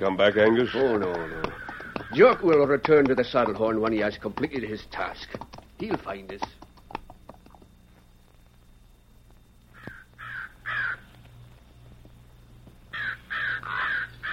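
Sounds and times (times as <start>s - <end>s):
speech: 0.0s - 6.6s
low steady hum: 0.0s - 14.3s
harsh loud crow caws: 0.1s - 3.8s, 9.7s - 11.2s, 12.9s - 14.3s
faint taps: 1.1s - 7.7s.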